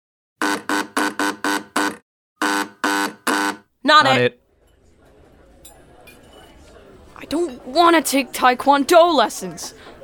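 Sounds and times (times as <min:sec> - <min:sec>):
loud harsh front door buzzer: 0:00.4 - 0:03.7
speech: 0:03.8 - 0:04.4, 0:07.2 - 0:09.9.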